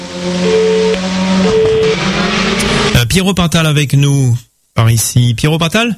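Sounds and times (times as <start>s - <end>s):
C3 R5 rally car engine revving at a rally: 0.0s - 3.0s
speech: 0.2s - 0.6s, 3.1s - 5.9s.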